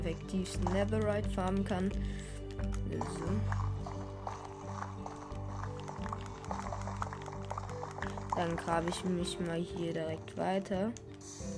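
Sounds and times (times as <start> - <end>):
steady video game music: 0.0 - 11.5
speech: 0.1 - 3.7, 8.4 - 11.4
video game water bucket emptied with gushing, dripping and splashing: 2.8 - 10.0.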